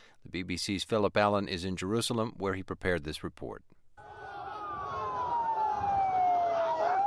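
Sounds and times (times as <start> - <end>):
speech: 0.3 - 3.8
ambulance siren wailing: 4.0 - 7.0
low rumble of street traffic: 4.0 - 7.0.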